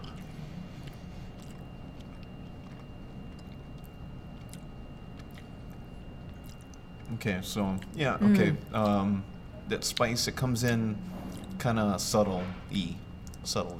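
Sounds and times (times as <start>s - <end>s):
wet chewing of food: 0.0s - 8.0s
speech: 7.1s - 13.7s.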